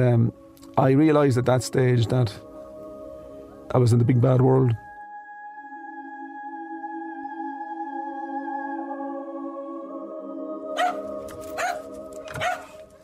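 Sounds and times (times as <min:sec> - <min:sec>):
speech: 0:00.0 - 0:02.5, 0:03.7 - 0:04.8
dog barking: 0:10.8 - 0:12.8.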